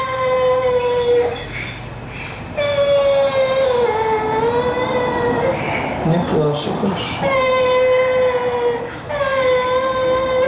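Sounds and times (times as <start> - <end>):
young child crying: 0.0 - 1.5, 2.6 - 5.8, 7.2 - 10.4
speech: 6.4 - 7.6.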